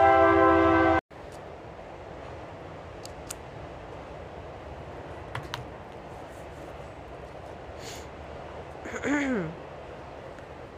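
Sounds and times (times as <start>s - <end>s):
train horn blast: 0.0s - 1.0s
train rolling past: 0.0s - 10.7s.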